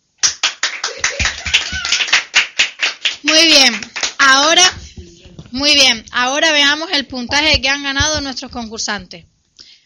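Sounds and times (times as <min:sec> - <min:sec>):
applause welcoming quiz game contestants: 0:00.2 - 0:04.8
speech: 0:05.6 - 0:09.3.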